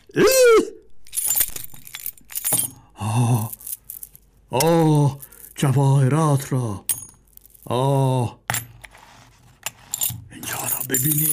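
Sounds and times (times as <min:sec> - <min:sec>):
speech: 0:00.2 - 0:00.5, 0:04.5 - 0:06.9, 0:07.7 - 0:08.4, 0:10.9 - 0:11.3
metallic keys jangling while unlocking a chest: 0:01.0 - 0:05.6, 0:09.8 - 0:11.3.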